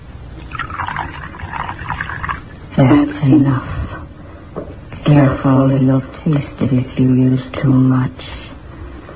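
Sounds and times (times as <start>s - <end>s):
liquid pouring from a bottle into cocoa: 0.4s - 2.5s
speech: 2.8s - 3.9s, 5.1s - 8.4s.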